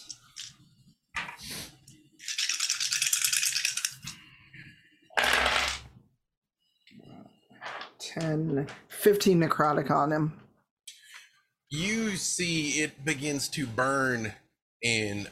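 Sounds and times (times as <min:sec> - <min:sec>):
dice being gathered and rattled during a tabletop game: 0:02.2 - 0:04.0
speech: 0:08.2 - 0:10.4, 0:11.7 - 0:15.3.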